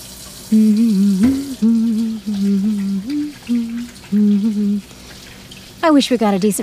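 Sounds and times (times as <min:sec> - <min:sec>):
dishes being washed: 0:00.0 - 0:06.6
water running steadily from a tap: 0:00.0 - 0:06.6
speech: 0:00.5 - 0:02.8, 0:05.9 - 0:06.6
short low humming tones: 0:00.5 - 0:05.6.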